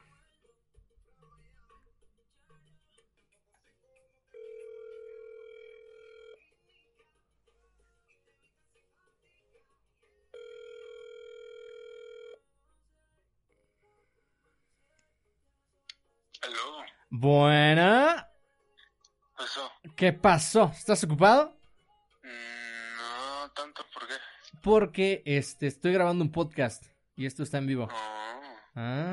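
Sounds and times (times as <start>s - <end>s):
telephone ringback tone as a call is placed: 4.4s - 6.4s, 10.4s - 12.4s
speech: 16.6s - 18.0s, 20.0s - 21.6s, 24.6s - 28.1s, 28.8s - 29.1s.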